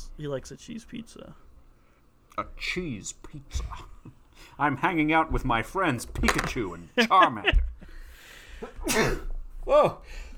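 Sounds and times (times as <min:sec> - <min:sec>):
speech: 0:00.2 - 0:01.5, 0:02.4 - 0:07.6, 0:08.6 - 0:10.3
person sneezing: 0:08.8 - 0:09.3.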